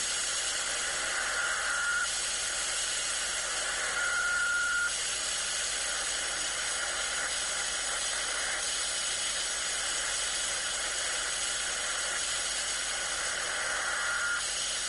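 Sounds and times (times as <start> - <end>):
static hiss on a software-defined radio: 0.0 - 14.8
Perseid meteor shower radio echo whistling pings on a software-defined radio: 1.3 - 2.1, 3.8 - 4.9, 13.8 - 14.4.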